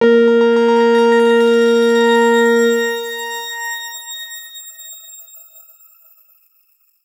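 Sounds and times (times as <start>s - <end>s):
X Grain sampled A#3 note played ff: 0.0s - 4.9s.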